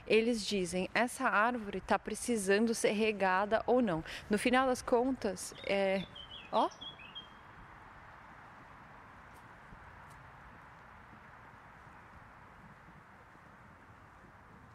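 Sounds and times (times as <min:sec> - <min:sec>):
outdoor noise: 0:00.0 - 0:14.7
speech: 0:00.1 - 0:06.9
bird chirping from a nearby nest: 0:05.4 - 0:07.6.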